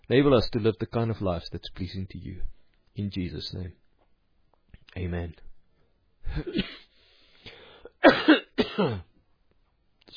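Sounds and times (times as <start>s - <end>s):
speech: 0.1s - 3.8s, 4.9s - 5.5s, 6.3s - 6.8s, 8.0s - 9.1s
harsh coughing fit: 6.3s - 6.9s, 7.9s - 9.2s
wheezy breath: 6.8s - 8.0s.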